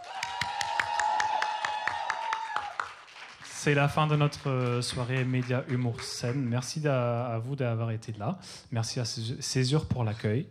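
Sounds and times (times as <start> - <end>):
audience applause at the end of an evening event: 0.0 - 6.6
speech: 3.6 - 10.4.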